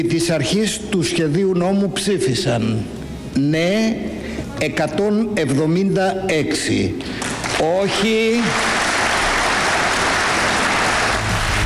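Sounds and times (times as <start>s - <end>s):
speech: 0.0s - 8.8s
applause in a parliament chamber after a vote on a bill: 7.2s - 11.6s.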